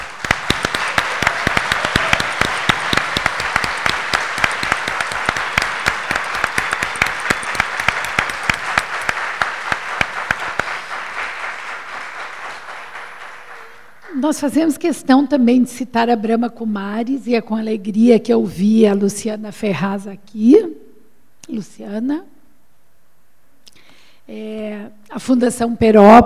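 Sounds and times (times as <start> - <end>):
audience applause at an event: 0.0 - 14.4
speech: 14.3 - 20.8, 21.5 - 22.3, 24.3 - 26.2.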